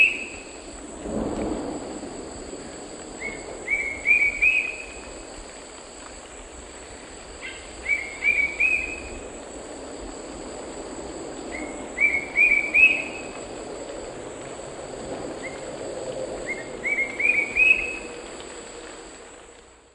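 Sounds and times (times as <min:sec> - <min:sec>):
insects humming: 0:00.0 - 0:19.9
bright-rumped attila whistled calls in the Eastern Lowlands of South America: 0:07.5 - 0:09.1, 0:11.6 - 0:13.3, 0:16.5 - 0:18.1.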